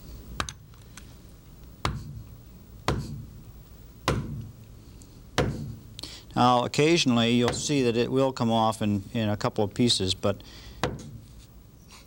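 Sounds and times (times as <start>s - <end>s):
chisel striking the petrous portion of a temporal bone: 4.0s - 4.4s, 7.4s - 7.8s
speech: 6.4s - 10.7s.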